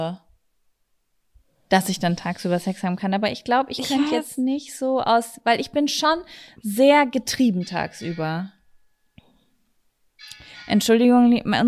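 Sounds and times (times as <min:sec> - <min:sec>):
speech: 0:00.0 - 0:00.2, 0:01.7 - 0:08.6, 0:10.7 - 0:11.6
household doorbell ringing: 0:07.6 - 0:08.5.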